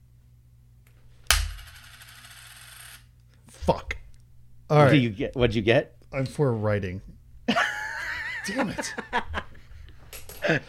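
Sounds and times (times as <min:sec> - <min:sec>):
flipped coin landing with a metallic clink: 0:01.3 - 0:03.0
speech: 0:03.7 - 0:04.0, 0:04.7 - 0:07.6, 0:08.5 - 0:09.4, 0:10.5 - 0:10.6
laughter: 0:07.5 - 0:09.8.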